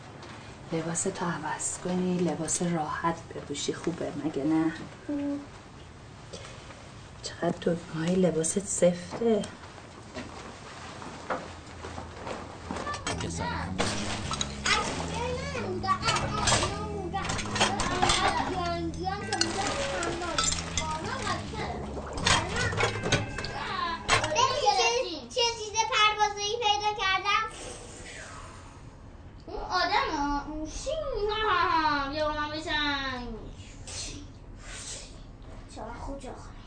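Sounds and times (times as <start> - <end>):
mechanical hum: 0.0 - 36.6
speech: 0.7 - 5.6, 7.3 - 9.6
children chattering and calling out at play: 12.9 - 13.8, 14.4 - 25.9.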